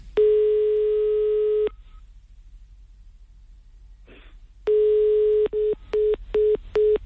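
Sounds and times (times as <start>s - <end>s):
telephone ringing tone on a call: 0.2s - 1.8s, 4.7s - 7.0s.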